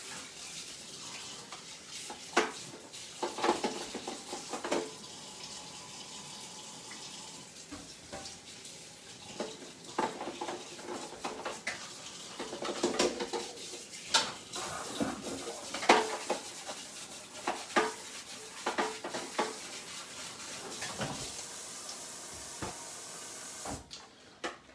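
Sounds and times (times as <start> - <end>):
running tap water splashing over a plastic microwave egg cooker: 1.1 - 5.0, 7.7 - 8.5, 9.2 - 22.9.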